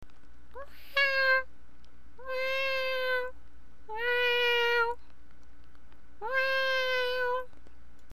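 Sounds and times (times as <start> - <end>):
faint steady hum: 0.0 - 8.1
cat meowing: 0.6 - 1.5, 2.2 - 3.3, 3.9 - 5.0, 6.2 - 7.5.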